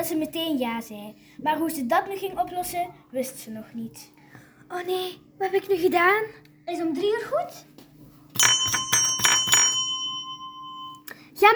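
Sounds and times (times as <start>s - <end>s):
speech: 0.0s - 7.7s
school bell ringing: 8.4s - 11.1s.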